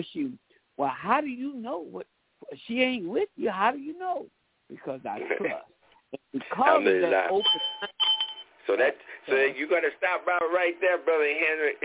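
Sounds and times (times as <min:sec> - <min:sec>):
speech: 0:00.0 - 0:08.0, 0:08.7 - 0:11.8
bell ringing: 0:07.3 - 0:08.6.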